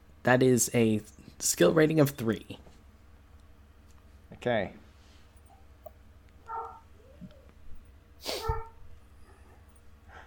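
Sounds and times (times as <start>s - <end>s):
low hum: 0.0s - 10.2s
speech: 0.2s - 2.7s, 4.4s - 4.8s
small puppy barking and yipping: 6.4s - 6.9s.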